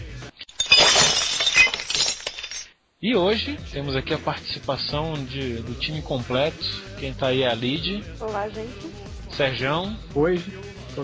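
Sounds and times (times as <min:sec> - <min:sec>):
glass shattering: 0:00.4 - 0:02.7
speech: 0:03.0 - 0:11.0.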